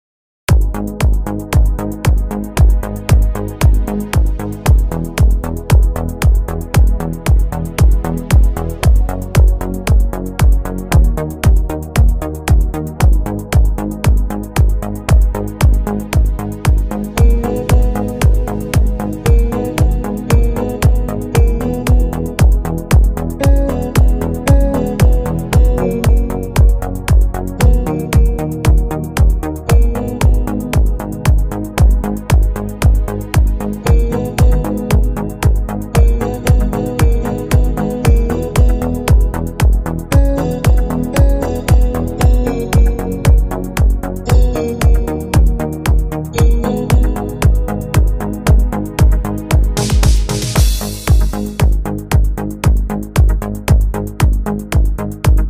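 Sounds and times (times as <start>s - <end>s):
new italo disco music: 0.5s - 55.4s.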